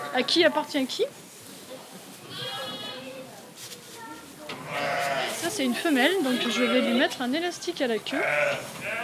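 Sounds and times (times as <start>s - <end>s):
farmyard bustle: 0.0s - 9.0s
speech: 0.2s - 1.2s, 5.5s - 9.0s
lamb bleating as it is marked: 2.3s - 3.0s, 4.6s - 5.4s, 6.2s - 7.1s, 8.1s - 9.0s.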